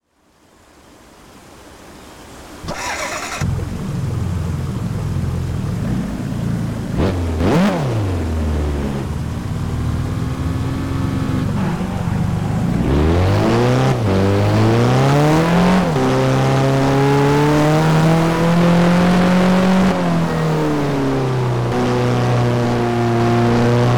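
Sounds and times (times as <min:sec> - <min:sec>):
Alfa Romeo 4C sports car engine: 0:02.6 - 0:23.9.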